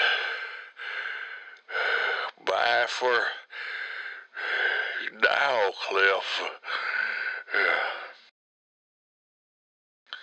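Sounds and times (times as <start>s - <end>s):
heavy rasping breathing: 0.0s - 2.4s, 3.2s - 5.2s, 6.6s - 8.3s
speech: 2.8s - 3.8s, 5.0s - 6.9s, 7.5s - 8.0s.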